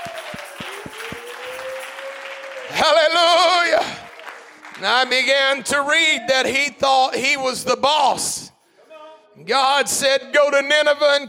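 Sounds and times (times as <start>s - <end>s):
crowd clapping together in a steady rhythm: 0.0s - 5.8s
speech: 4.8s - 8.4s, 9.4s - 11.2s.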